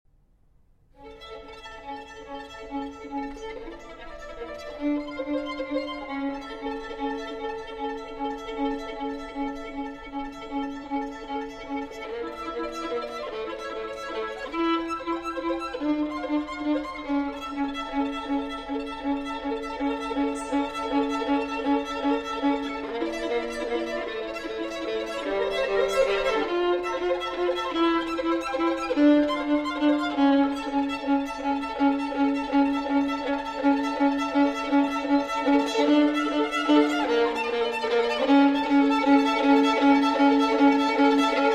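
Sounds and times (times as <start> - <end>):
string orchestra: 0.9 - 41.5
violin: 0.9 - 41.5.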